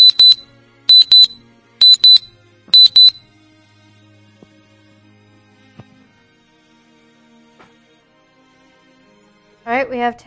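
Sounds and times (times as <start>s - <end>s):
wristwatch alarm beeping in high-pitched electronic tones: 0.0s - 3.2s
speech: 9.7s - 10.2s.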